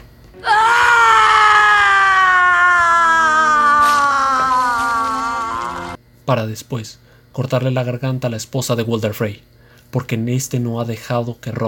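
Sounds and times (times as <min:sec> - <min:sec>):
woman screaming in anguished pain: 0:00.4 - 0:06.0
speech: 0:06.3 - 0:11.6.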